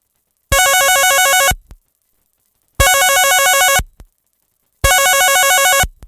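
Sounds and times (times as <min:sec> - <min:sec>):
telephone ringing after dialing: 0:00.5 - 0:01.6, 0:02.8 - 0:03.8, 0:04.8 - 0:06.0.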